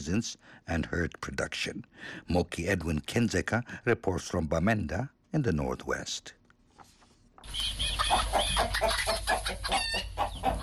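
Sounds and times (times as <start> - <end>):
speech: 0.0 - 6.4, 7.4 - 10.6
many chickens clucking and squawking in Santa near Bamenda in Cameroon: 7.4 - 10.6.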